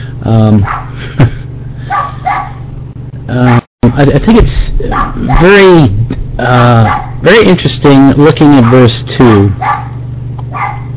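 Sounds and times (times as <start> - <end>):
steady low electrical hum: 0.0 - 10.9
speech: 0.3 - 1.3, 3.3 - 9.8
dogs barking and yelping: 0.6 - 1.1, 1.8 - 2.7, 4.8 - 5.6, 6.8 - 7.3, 8.4 - 10.9.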